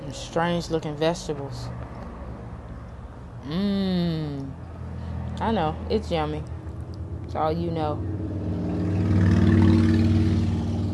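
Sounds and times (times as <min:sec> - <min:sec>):
speech: 0:00.1 - 0:01.9, 0:03.5 - 0:04.6, 0:05.4 - 0:06.6, 0:07.3 - 0:08.2
motorcycle passing by with low engine rumble: 0:03.4 - 0:10.9.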